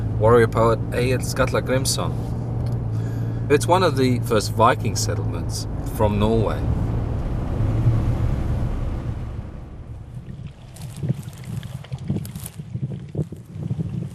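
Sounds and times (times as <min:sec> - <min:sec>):
speech: 0:00.2 - 0:02.4, 0:03.5 - 0:06.9
strong wind blowing outdoors: 0:04.8 - 0:14.1.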